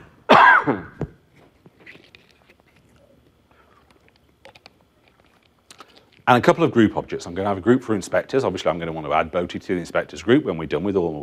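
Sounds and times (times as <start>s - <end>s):
presenter coughing during a coding demo: 0.3s - 1.0s
throat clearing: 0.3s - 1.0s
speech: 6.3s - 11.2s.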